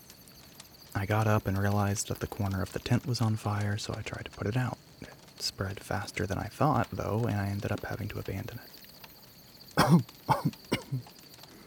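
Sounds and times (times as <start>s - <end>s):
speech: 1.0s - 4.8s, 5.4s - 8.8s, 9.8s - 11.2s
person coughing outdoors at night after smoke from a burning tent: 9.8s - 11.1s.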